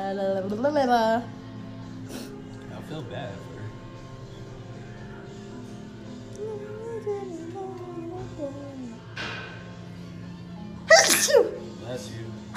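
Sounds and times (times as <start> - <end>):
speech: 0.1 - 1.4, 2.9 - 3.5, 11.2 - 12.4
person sneezing: 10.9 - 11.6.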